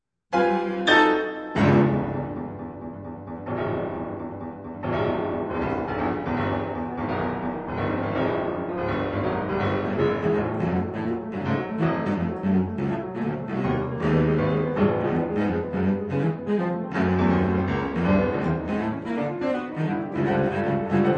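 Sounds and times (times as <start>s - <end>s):
cello sonata: 0.4s - 21.1s.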